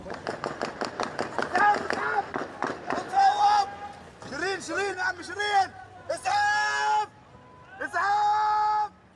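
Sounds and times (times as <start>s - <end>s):
rapid string of sharp gunshots on a street: 0.1s - 3.1s
people shouting and crying out in alarm calling for an ambulance: 1.5s - 4.1s, 5.4s - 9.1s.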